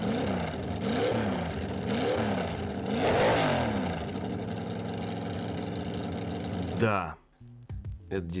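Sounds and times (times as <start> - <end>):
Chrysler Firepower 6.1-litre V8 engine revving: 0.0 - 6.8
speech: 6.8 - 7.2, 8.1 - 8.3.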